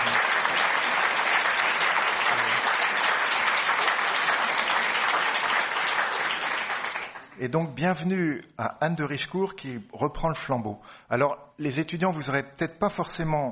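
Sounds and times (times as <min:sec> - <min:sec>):
crowd applauding: 0:00.0 - 0:07.4
speech: 0:07.4 - 0:13.5.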